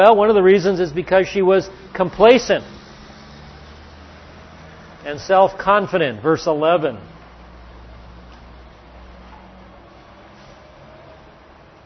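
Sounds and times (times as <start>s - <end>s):
speech: 0.0s - 2.8s, 5.0s - 7.1s
broad road noise: 0.0s - 11.8s
heavy truck engine drone driving past outside: 0.0s - 11.8s.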